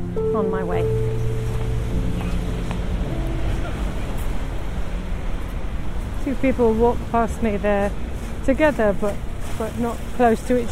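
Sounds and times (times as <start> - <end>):
speech: 0.0 - 1.1, 6.3 - 10.7
boat engine drone on the River Thames in London: 0.0 - 10.7
traffic rumbling in London: 0.0 - 10.7
wind along the River Thames: 0.0 - 10.7.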